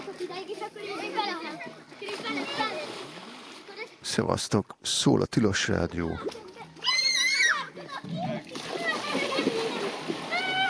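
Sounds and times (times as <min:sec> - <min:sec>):
Danube river water splashing and babbling: 0:00.0 - 0:10.6
speech: 0:00.2 - 0:03.2, 0:04.0 - 0:06.4
children calling out: 0:06.2 - 0:10.6.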